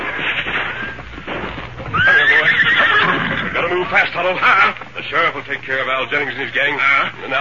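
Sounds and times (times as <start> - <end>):
horse hooves clip-clopping: 0.0 - 7.3
horse whinnying: 1.9 - 3.8
speech: 3.9 - 7.3.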